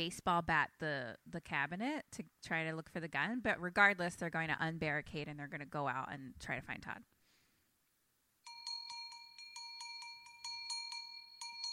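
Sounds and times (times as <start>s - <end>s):
speech: 0.0s - 7.1s
bright metallic cowbell clanking: 8.5s - 11.7s.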